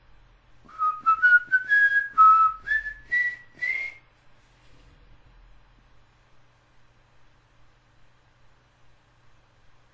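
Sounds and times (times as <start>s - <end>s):
person whistling a short rising tune: 0.7s - 4.0s.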